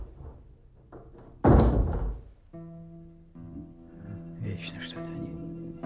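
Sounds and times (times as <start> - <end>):
door slamming shut: 1.1 - 2.3
speech: 4.6 - 5.4.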